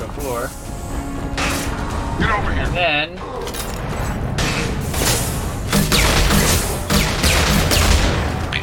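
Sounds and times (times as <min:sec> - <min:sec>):
continuous dense video game noise and rumble: 0:00.0 - 0:08.6
speech: 0:02.2 - 0:03.3
grenade launcher firing grenades in a video game: 0:05.0 - 0:08.4.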